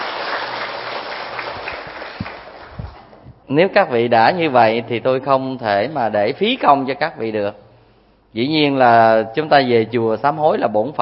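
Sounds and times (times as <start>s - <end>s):
crowd clapping: 0.0s - 3.1s
speech: 3.5s - 7.6s, 8.3s - 11.0s.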